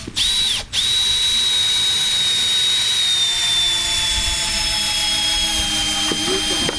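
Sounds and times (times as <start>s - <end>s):
high whining mechanical tone of construction machinery: 0.2s - 6.7s
construction machinery engine droning: 3.2s - 6.7s.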